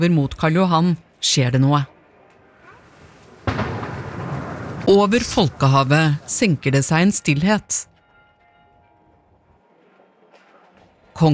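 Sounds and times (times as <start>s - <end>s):
speech: 0.0s - 1.9s, 4.9s - 7.9s, 11.2s - 11.3s
cannon salute shot during a royal funeral procession in an Oslo street: 3.4s - 6.3s.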